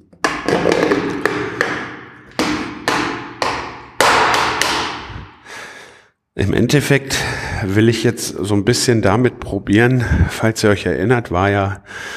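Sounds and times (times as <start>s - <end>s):
hard knocks on the lid of a paint bucket being opened: 0.2s - 4.9s
speech: 6.4s - 12.1s.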